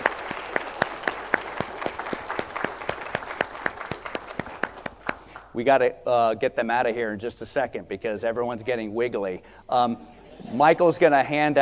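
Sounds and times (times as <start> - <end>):
crowd applauding: 0.0 - 5.5
speech: 5.6 - 11.6.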